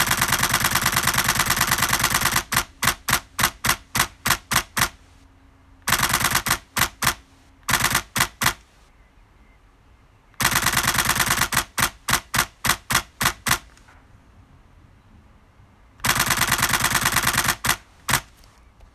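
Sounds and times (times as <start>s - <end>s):
D850 camera with grip: 0.0s - 5.1s, 5.8s - 8.7s, 10.4s - 13.9s, 16.0s - 18.6s.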